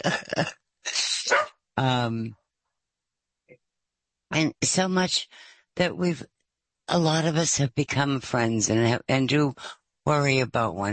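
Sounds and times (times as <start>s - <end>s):
speech: 0.0s - 0.6s, 1.8s - 2.4s, 4.3s - 10.9s
dog barking: 1.3s - 1.5s.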